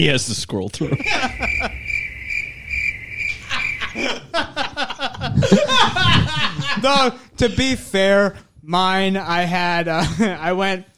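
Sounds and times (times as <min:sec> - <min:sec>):
speech: 0:00.0 - 0:01.8, 0:04.0 - 0:10.9
people chuckling: 0:00.8 - 0:01.8, 0:03.3 - 0:07.6
high-pitched cricket chirping sound effect: 0:00.8 - 0:05.1.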